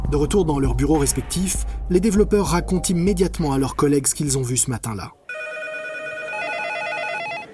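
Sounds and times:
speech: 0:00.1 - 0:05.2
telephone ringing with an electronic tone: 0:05.3 - 0:07.5.

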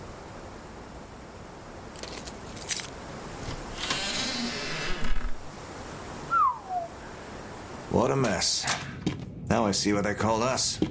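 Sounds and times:
bunch of keys jangling as a chalet door is unlocked: 0:02.0 - 0:02.9
chalet door creaking open: 0:03.5 - 0:05.5
speech: 0:08.0 - 0:08.9, 0:09.5 - 0:10.8.

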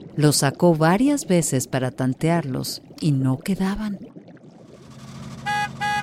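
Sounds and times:
speech: 0:00.2 - 0:04.1
car engine idling: 0:04.8 - 0:06.0
car horn honking: 0:05.3 - 0:06.0.

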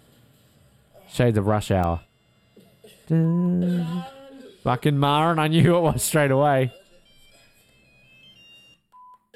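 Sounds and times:
speech: 0:01.1 - 0:02.1, 0:03.1 - 0:06.8
faint electronic phone ringtone: 0:06.7 - 0:09.2.

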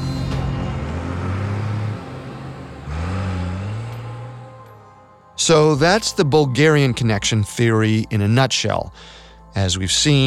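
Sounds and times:
getaway truck engine revving and accelerating: 0:00.0 - 0:06.9
speech: 0:05.5 - 0:10.2.

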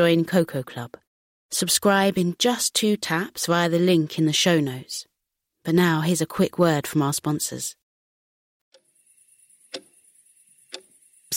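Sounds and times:
speech: 0:00.0 - 0:07.8
bedroom clock ticking: 0:09.7 - 0:09.9, 0:10.7 - 0:11.3.

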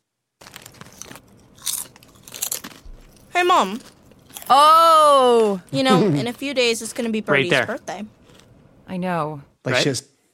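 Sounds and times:
crunchy food being chewed: 0:00.4 - 0:04.6, 0:06.3 - 0:08.6
speech: 0:03.4 - 0:03.9, 0:04.5 - 0:08.2, 0:08.9 - 0:10.1.

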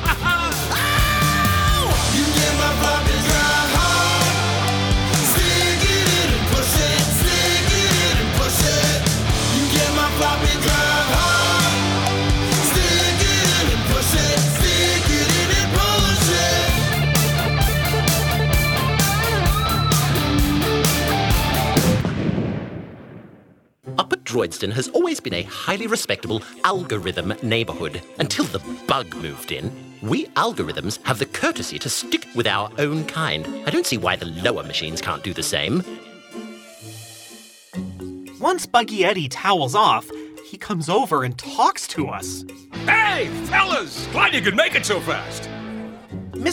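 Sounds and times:
laughter: 0:00.0 - 0:01.6
loud dense music with pounding low-end rhythm: 0:00.0 - 0:22.1, 0:42.7 - 0:46.4
speech: 0:24.5 - 0:36.1, 0:38.4 - 0:45.6, 0:46.4 - 0:46.5.

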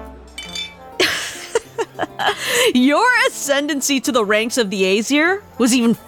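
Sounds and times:
ale mugs clinking in a toast at a feast: 0:00.2 - 0:01.7
laughter: 0:01.0 - 0:02.7
speech: 0:02.0 - 0:06.0.

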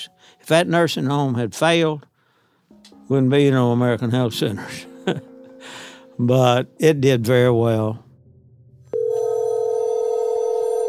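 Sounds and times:
speech: 0:00.5 - 0:02.1, 0:03.1 - 0:08.0
electronic telephone ring tone from 1984: 0:08.9 - 0:10.8.

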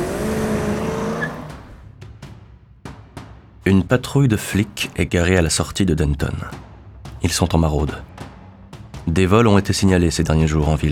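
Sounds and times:
Ford car engine roaring at full throttle: 0:00.0 - 0:02.0
speech: 0:03.7 - 0:08.2, 0:09.1 - 0:10.9.

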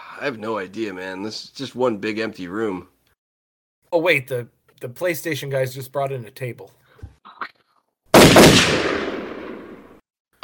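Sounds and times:
speech: 0:00.2 - 0:03.0, 0:03.9 - 0:06.8
gunshot in a video game: 0:08.2 - 0:10.0.

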